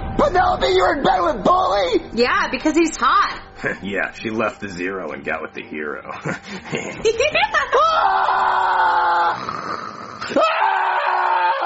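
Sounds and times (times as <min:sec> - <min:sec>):
speech: 0:00.4 - 0:11.0
laughter: 0:06.1 - 0:08.5
person screaming awake from a nightmare: 0:07.8 - 0:11.6.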